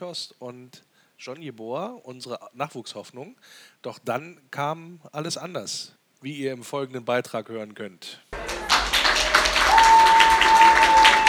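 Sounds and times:
speech: 0:00.0 - 0:08.3
applause in a youth centre as guests enter a room: 0:08.4 - 0:11.2.

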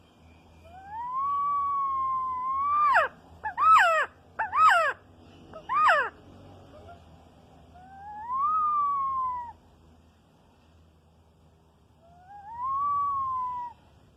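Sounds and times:
low steady hum: 0:00.0 - 0:14.1
quetzal whistling calls: 0:00.4 - 0:06.1, 0:07.8 - 0:09.6, 0:12.0 - 0:13.9.

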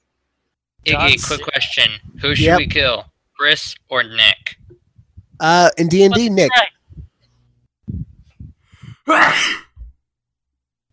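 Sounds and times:
speech: 0:00.8 - 0:04.6, 0:05.4 - 0:06.7, 0:09.1 - 0:09.6
short catching breaths before a sneeze: 0:07.9 - 0:09.1
loud explosive sneeze: 0:09.0 - 0:09.8.

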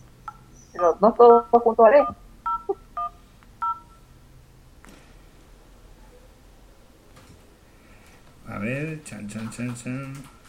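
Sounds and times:
low hum: 0:00.0 - 0:10.4
telephone keypad dialing tones: 0:00.3 - 0:03.9
speech: 0:00.7 - 0:02.2, 0:08.7 - 0:10.4.

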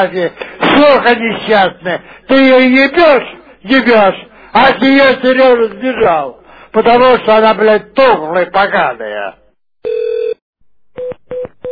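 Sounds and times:
speech: 0:00.0 - 0:10.1
telephone line tones during a prank call: 0:09.8 - 0:10.4.

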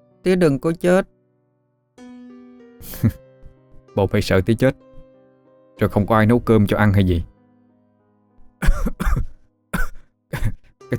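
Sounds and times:
speech: 0:00.2 - 0:01.1, 0:02.8 - 0:03.2, 0:04.0 - 0:04.9, 0:05.8 - 0:07.3
man coughing harsh chesty coughs: 0:08.6 - 0:10.7.

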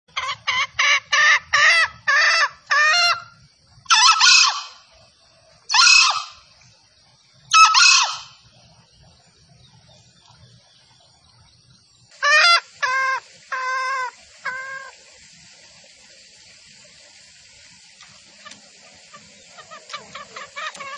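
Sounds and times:
female junglefowl call used as a lure for trapping in the forest: 0:00.1 - 0:05.0, 0:05.7 - 0:06.5, 0:07.5 - 0:08.4, 0:12.2 - 0:15.0, 0:18.2 - 0:20.9.

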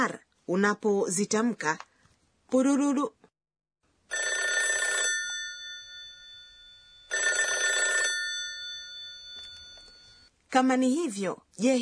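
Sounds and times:
speech: 0:00.0 - 0:01.9, 0:02.5 - 0:03.2, 0:10.5 - 0:11.8
telephone ringing with bright metallic ring bursts: 0:04.1 - 0:10.3.

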